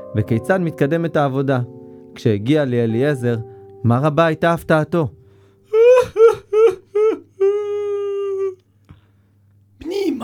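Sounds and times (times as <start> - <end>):
speech: 0.1 - 5.2
man wailing and sobbing uncontrollably: 5.7 - 8.6.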